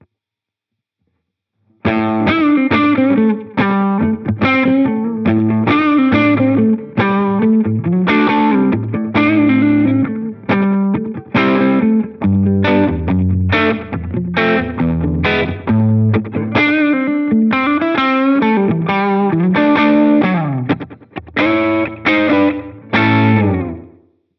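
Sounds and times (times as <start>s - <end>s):
tape echo effect: 1.9s - 24.1s.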